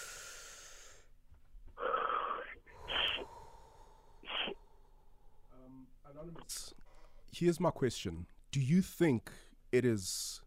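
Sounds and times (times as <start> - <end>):
person taking a deep breath in, breathy and wheezy: 0.0 - 1.1, 1.8 - 5.0
speech: 6.5 - 10.4.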